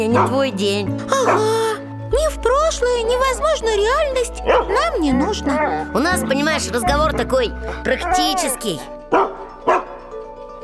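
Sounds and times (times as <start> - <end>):
dog barking at a laptop: 0.0 - 0.5, 1.2 - 1.5, 4.4 - 5.9, 6.6 - 8.5, 9.1 - 10.0
speech: 0.0 - 9.0.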